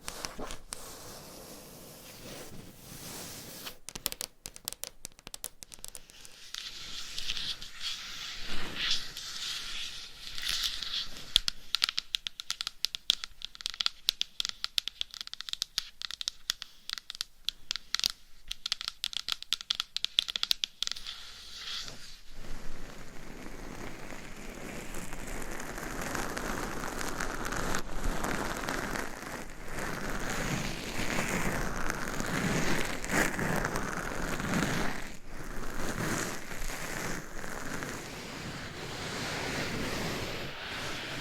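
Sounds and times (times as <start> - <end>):
crisp scratching and tapping: 0.0 - 1.2, 3.6 - 21.2, 21.9 - 41.1
smoother fuller rubbing or brushing sound: 0.0 - 3.9, 6.2 - 11.4, 21.0 - 41.1.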